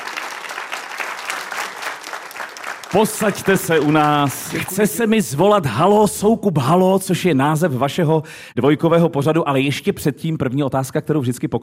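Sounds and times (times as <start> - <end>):
audience applause at an evening event in Kaplice Czech Republic: 0.0 - 4.7
speech: 2.9 - 11.6.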